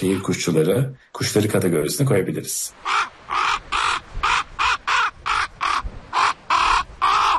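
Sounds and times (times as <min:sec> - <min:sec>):
speech: 0:00.0 - 0:03.1
common raven croaking calls: 0:02.7 - 0:07.3.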